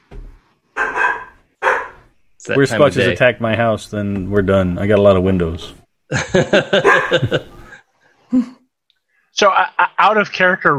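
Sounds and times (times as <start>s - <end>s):
dog barking: 0.8s - 2.1s, 6.8s - 7.4s
speech: 2.4s - 7.6s, 8.3s - 8.6s, 9.4s - 10.7s
laughter: 6.1s - 7.8s.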